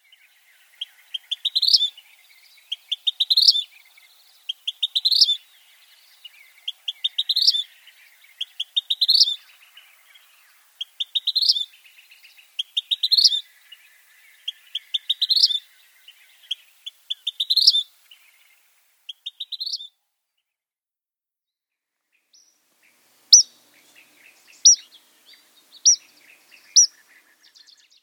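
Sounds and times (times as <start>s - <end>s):
Vermilion Flycatcher: 0.0s - 19.9s, 22.1s - 28.0s.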